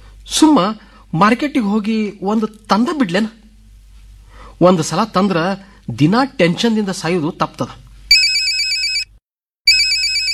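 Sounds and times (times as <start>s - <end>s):
speech: 0.3s - 3.4s, 4.6s - 7.8s
mobile phone ringtone with bright high electronic tune: 8.1s - 9.1s, 9.7s - 10.3s.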